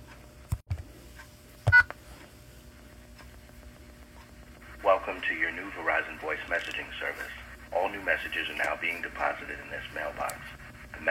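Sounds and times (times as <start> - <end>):
telephone keypad tones entering a voicemail passcode: 1.7 - 1.9
speech: 5.0 - 11.0.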